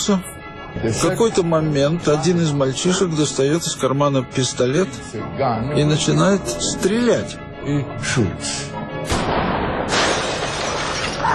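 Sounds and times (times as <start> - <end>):
speech: 0.0 - 8.7
bright spray of breaking glass shards and debris: 9.8 - 11.2
glass shattering: 9.9 - 11.3.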